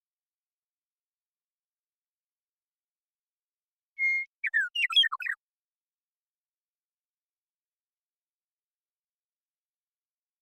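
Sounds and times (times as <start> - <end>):
Western meadowlark Sturnella neglecta singing in Washington, United States: 4.0 - 5.4.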